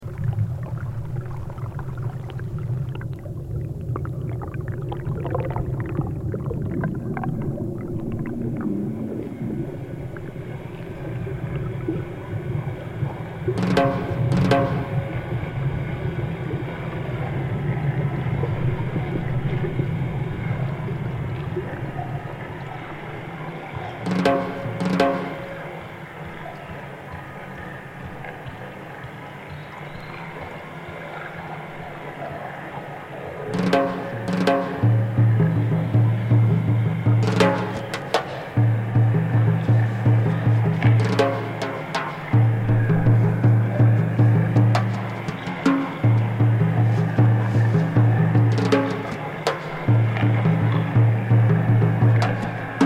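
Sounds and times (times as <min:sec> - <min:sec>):
water: 0:00.0 - 0:52.8
drums: 0:13.4 - 0:15.8, 0:23.8 - 0:29.2, 0:33.6 - 0:52.8.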